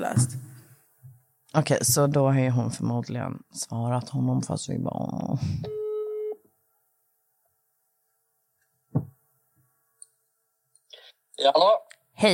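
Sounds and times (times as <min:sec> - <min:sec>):
speech: 0:00.0 - 0:00.5, 0:01.5 - 0:05.8, 0:11.4 - 0:12.3
phone ringback tone while calling: 0:05.7 - 0:06.4
dull thump: 0:08.9 - 0:09.2.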